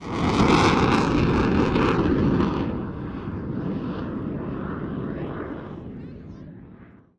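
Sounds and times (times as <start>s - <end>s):
drop ship taking off: 0.0s - 6.6s.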